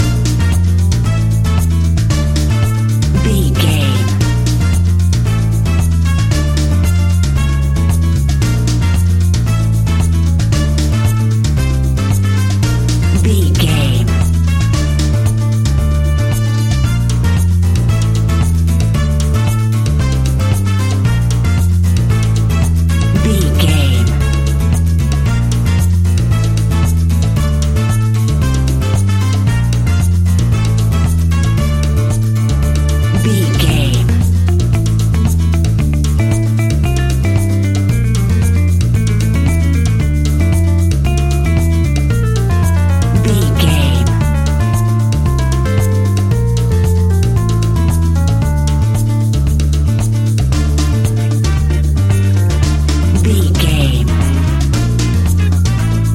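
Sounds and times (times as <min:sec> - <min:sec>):
exotic Spanish and Latin music: 0:00.0 - 0:56.1.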